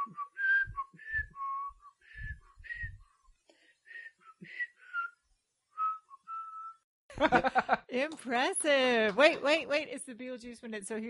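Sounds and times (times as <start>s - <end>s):
person whistling a bouncy tune: 0.0s - 3.2s, 3.9s - 5.2s, 5.8s - 6.8s
laughter: 7.1s - 7.9s
speech: 7.2s - 11.0s.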